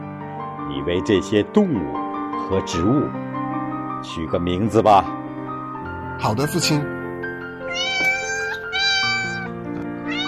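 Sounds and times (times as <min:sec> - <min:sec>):
speech: 0:00.7 - 0:03.3, 0:04.0 - 0:05.2, 0:06.2 - 0:07.0
cat meowing: 0:07.6 - 0:10.2.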